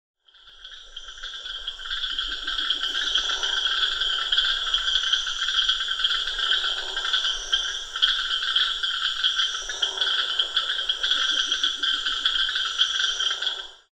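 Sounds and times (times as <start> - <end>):
frogs at the Rio Negro in Anavilhanas: 0.2 - 13.9.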